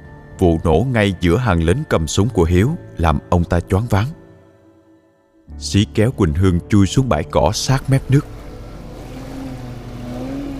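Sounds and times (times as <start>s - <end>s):
speech: 0.4s - 4.2s, 5.5s - 8.4s
armed motorboats speeding across a rough river: 7.7s - 10.5s.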